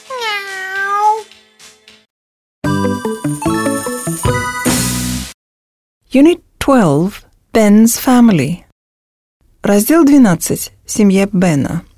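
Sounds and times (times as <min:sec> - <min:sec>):
cat meowing: 0:00.0 - 0:01.3
bright tinkling musical jingle: 0:02.6 - 0:04.9
speech: 0:06.1 - 0:08.6, 0:09.7 - 0:11.9.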